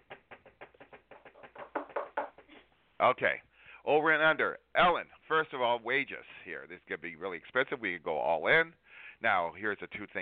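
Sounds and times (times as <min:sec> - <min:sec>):
quiet knocking on a hard surface: 0:00.0 - 0:02.6
speech: 0:03.0 - 0:10.2.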